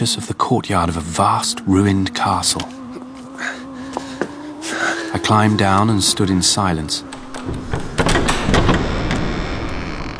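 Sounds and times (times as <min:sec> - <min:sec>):
speech: 0:00.0 - 0:02.8, 0:05.1 - 0:07.9
great heavy door swinging open with a rumbling grind: 0:05.2 - 0:10.1.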